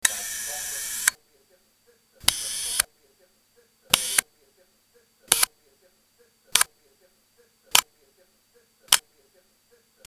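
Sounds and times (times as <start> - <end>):
shutter: 0.0 - 1.2, 2.2 - 2.9, 3.9 - 4.3, 5.3 - 5.5.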